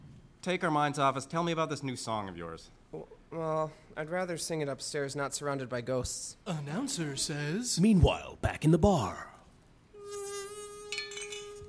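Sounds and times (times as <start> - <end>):
speech: 0.4 - 9.3
insect buzzing, possibly a bee: 10.0 - 11.6
faint clink: 10.9 - 11.6.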